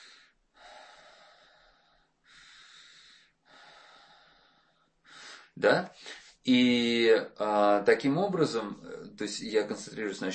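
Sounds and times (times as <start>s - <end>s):
heavy airy breathing with a slightly wheezy edge: 0.0s - 6.4s
speech: 5.6s - 10.3s.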